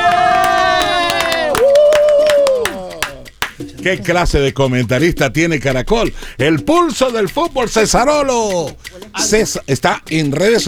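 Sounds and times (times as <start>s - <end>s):
whooping cheer: 0.0s - 3.4s
applause: 0.0s - 3.6s
speech: 3.8s - 10.6s.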